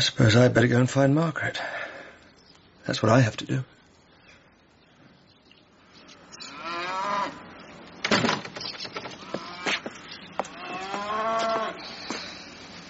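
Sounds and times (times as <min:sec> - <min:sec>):
speech: 0:00.0 - 0:01.8, 0:02.9 - 0:03.8
cow needing milking mooing: 0:06.5 - 0:07.4, 0:10.6 - 0:11.8.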